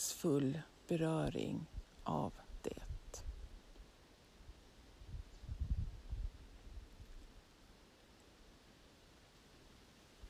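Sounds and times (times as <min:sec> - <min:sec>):
soft wind rustling through trees: 0:00.0 - 0:10.2
speech: 0:00.2 - 0:03.2.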